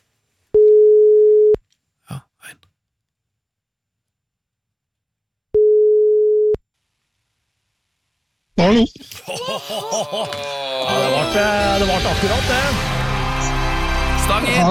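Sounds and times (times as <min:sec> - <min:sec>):
phone line ringing tone: 0:00.6 - 0:01.6, 0:05.6 - 0:06.6
speech: 0:08.6 - 0:13.0, 0:14.3 - 0:14.6
laughter: 0:09.0 - 0:12.6.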